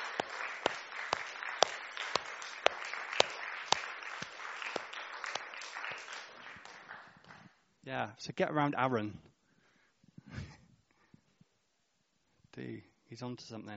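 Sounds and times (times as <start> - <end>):
audience applauding: 0.0 - 7.6
sharp loud claps: 0.0 - 7.6
speech: 7.9 - 9.3, 12.7 - 13.7.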